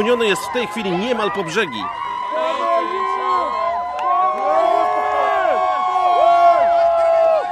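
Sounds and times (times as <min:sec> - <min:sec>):
speech: 0:00.0 - 0:02.2
large crowd of young people shouting and cheering in a square: 0:00.0 - 0:07.4.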